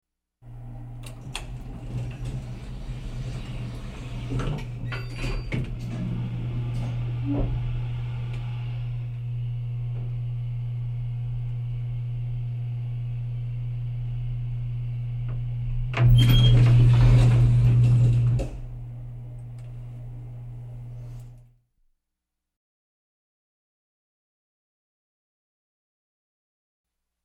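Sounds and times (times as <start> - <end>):
elevator running from a rider's perspective: 0.4 - 21.5.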